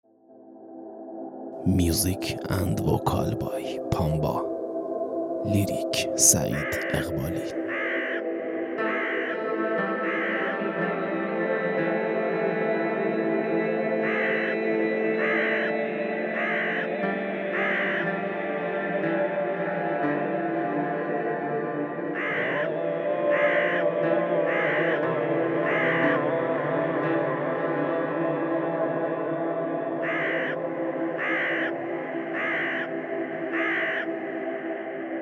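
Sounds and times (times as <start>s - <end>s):
steady sustained droning musical backdrop: 0.2s - 35.2s
speech: 1.6s - 4.5s, 5.4s - 7.6s
crows cawing: 5.5s - 12.0s, 13.3s - 19.7s, 21.9s - 27.2s, 30.0s - 35.1s.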